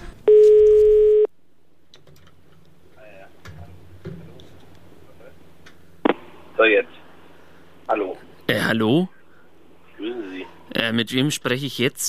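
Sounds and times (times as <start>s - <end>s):
steady telephone line tone as a caller comes on the line: 0.3s - 1.3s
speech: 8.7s - 9.2s, 10.8s - 12.0s.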